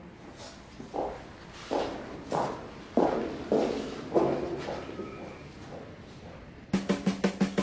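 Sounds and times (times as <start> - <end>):
footsteps of a person walking home: 0.2 - 6.7
quicker run of steps: 0.8 - 7.5.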